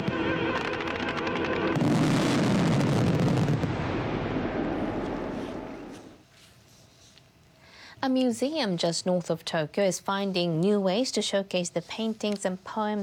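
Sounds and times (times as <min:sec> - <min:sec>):
large fireworks display exploding: 0:00.0 - 0:06.2
speech: 0:08.0 - 0:13.0.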